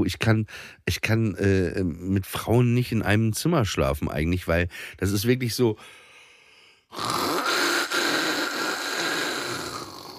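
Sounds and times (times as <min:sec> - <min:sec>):
speech: 0:00.0 - 0:06.0, 0:06.9 - 0:07.3
person imitating snoring with a rasping inhale: 0:06.9 - 0:10.1.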